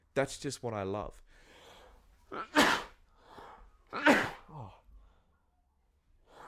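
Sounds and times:
speech: 0.2 - 1.2, 2.3 - 2.8
person sneezing from dust allergy: 2.3 - 3.0, 3.9 - 4.8.

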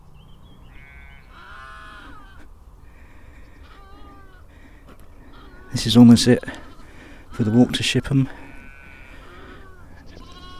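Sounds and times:
sheep bleating in an open field: 0.6 - 2.5, 3.6 - 4.6, 5.2 - 10.5
speech: 5.7 - 6.6, 7.4 - 8.4.

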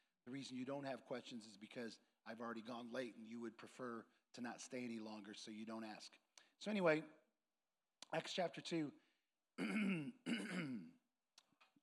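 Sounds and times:
speech: 0.2 - 7.2, 8.1 - 9.0
throat clearing after eating: 9.6 - 11.0.

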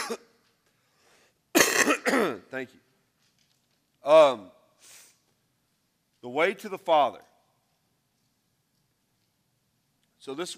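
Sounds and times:
person coughing: 0.0 - 0.4, 1.5 - 2.5
speech: 0.1 - 0.3, 2.1 - 2.9, 4.0 - 4.6, 6.2 - 7.3, 10.2 - 10.5
throat clearing: 1.6 - 2.5.

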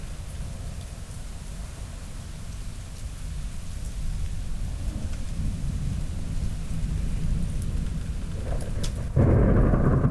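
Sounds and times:
steady October rain on a porch in Midland Texas: 0.0 - 10.0
low rumbling October thunderstorm in Midland Texas: 4.4 - 10.0.

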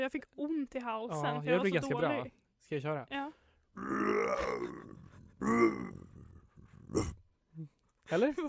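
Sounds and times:
speech: 0.0 - 6.1, 6.9 - 8.4
person imitating a lion's roar: 3.8 - 7.2.

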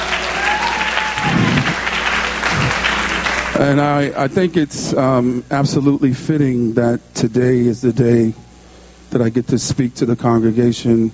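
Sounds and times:
congregation clapping hands: 0.0 - 4.1
faint tonal hum: 0.0 - 11.1
speech: 3.6 - 8.4, 9.1 - 11.1.

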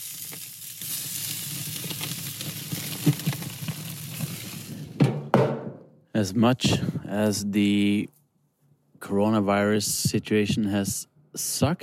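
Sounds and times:
food sizzling on a grill: 0.0 - 4.9
utensil knocks: 5.0 - 5.9
speech: 6.2 - 8.2, 9.0 - 11.8.

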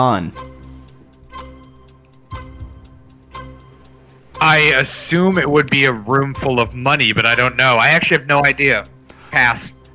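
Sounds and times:
speech: 0.0 - 0.5, 4.4 - 9.8
countdown clock ticking: 0.0 - 9.9
low sustained musical drone: 0.3 - 7.0.

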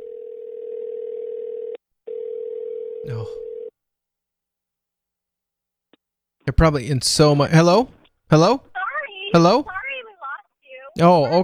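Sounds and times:
phone line ringing tone on an outgoing call: 0.0 - 3.7, 8.8 - 11.0
speech: 3.0 - 3.5, 6.5 - 8.7, 9.3 - 9.8, 11.0 - 11.4.

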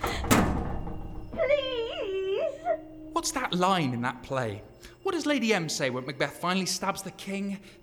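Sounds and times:
heavy door thudding shut: 0.0 - 1.6
speech: 3.2 - 7.8.

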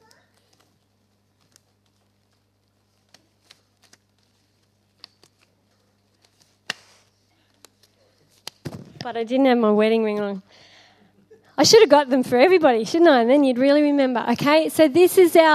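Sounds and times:
brief paper rustle: 0.0 - 9.0
pages turned with gloved hands: 0.0 - 9.1
speech: 9.0 - 10.5, 11.6 - 15.5.

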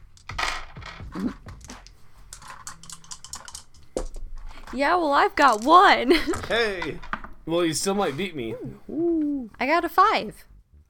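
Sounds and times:
two dice clattering across a hard tabletop: 0.1 - 7.4
speech: 1.2 - 1.5, 4.7 - 9.0, 9.6 - 10.5.

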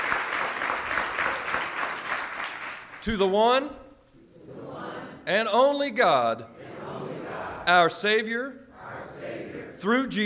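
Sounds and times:
audience clapping hands in dense applause: 0.0 - 3.0
speech: 3.0 - 3.8, 5.3 - 6.6, 7.7 - 8.6, 9.8 - 10.2.

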